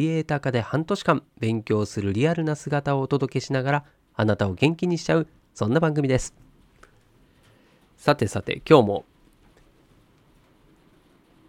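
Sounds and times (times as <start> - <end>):
speech: 0.0 - 6.4, 8.0 - 9.1
rain falling outside: 9.1 - 11.4.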